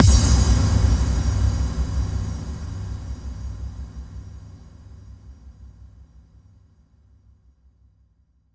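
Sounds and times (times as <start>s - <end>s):
bass drum kick with reverb: 0.0s - 5.1s.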